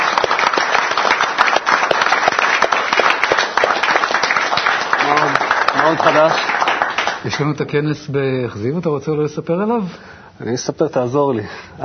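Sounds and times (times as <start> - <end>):
crowd clapping: 0.0 - 7.6
speech: 5.9 - 6.6, 7.2 - 11.8.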